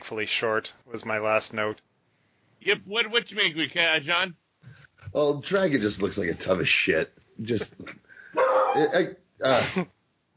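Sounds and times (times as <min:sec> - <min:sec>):
speech: 0:00.1 - 0:01.9, 0:02.6 - 0:10.0
dog barking: 0:08.4 - 0:09.1.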